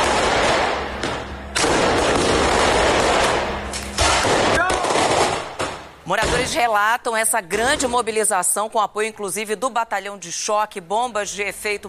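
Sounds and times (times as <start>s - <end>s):
firework rocket crackling bangs in Paraisópolis, São Paulo, Brazil: 0.0s - 6.5s
speech: 6.5s - 11.8s.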